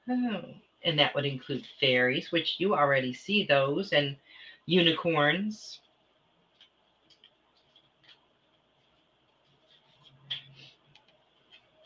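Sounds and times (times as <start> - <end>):
speech: 0.1 - 5.8
shuffling a deck of cards for a card reading: 6.5 - 11.8.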